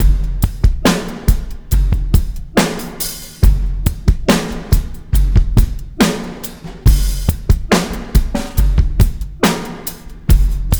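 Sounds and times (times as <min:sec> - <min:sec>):
slow-motion beat loop at 140 BPM: 0:00.0 - 0:10.7.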